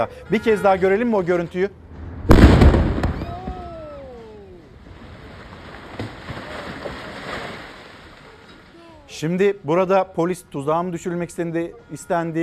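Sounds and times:
speech: 0.0 - 2.4, 9.2 - 12.4
noisy crackling outdoor ambience: 0.0 - 12.4
sharp bang: 1.8 - 3.7
loud explosion in replayed news footage: 1.8 - 3.9.

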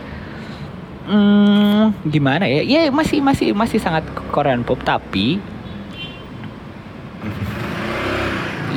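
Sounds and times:
speech: 1.1 - 5.5
motorcycle engine revving as it passes outside: 7.2 - 8.7.

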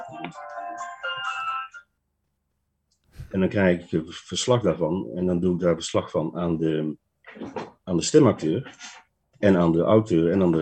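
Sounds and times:
speech: 0.3 - 0.9, 3.3 - 10.5
phone ringtone playing a bright melodic electronic tune: 0.5 - 1.9.

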